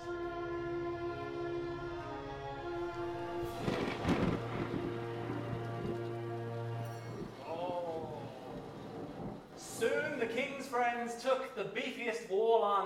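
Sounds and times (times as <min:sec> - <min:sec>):
sustained low tonal drone: 0:00.0 - 0:09.6
steady rain in a thunderstorm: 0:02.8 - 0:10.7
rolling thunder: 0:03.0 - 0:10.2
speech: 0:10.2 - 0:12.8.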